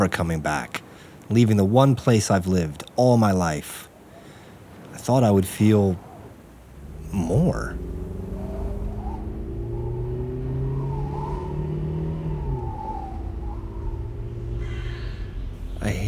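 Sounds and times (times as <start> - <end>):
speech: 0.0 - 3.9, 5.0 - 6.1, 7.1 - 8.0, 15.8 - 16.0
car engine accelerating at high speed on an empty desert road: 6.4 - 16.0.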